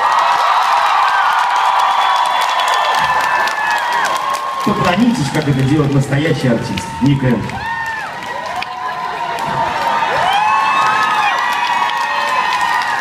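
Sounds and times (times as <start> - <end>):
crowd cheering with whoops and shouts: 0.0 - 13.0
large audience clapping for performers on stage: 0.0 - 13.0
speech: 4.6 - 7.7.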